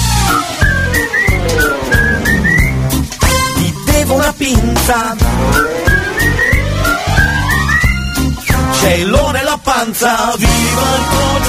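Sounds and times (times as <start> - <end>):
whistled melody of short gliding notes: 0.0 - 3.8, 5.4 - 8.8
full band backing with a steady beat: 0.0 - 9.4
speech: 4.5 - 5.8, 8.8 - 11.4.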